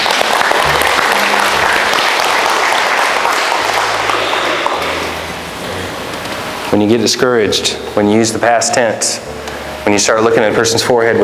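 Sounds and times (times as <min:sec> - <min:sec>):
crowd applauding: 0:00.0 - 0:06.4
speech: 0:06.7 - 0:11.2.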